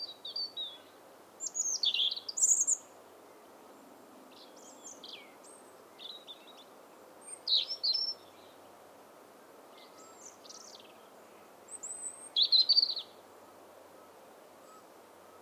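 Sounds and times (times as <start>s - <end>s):
European robin Erithacus rubecula singing high thin phrases: 0.0s - 2.9s, 4.3s - 8.6s, 9.7s - 13.2s
steady background hiss: 0.0s - 15.3s.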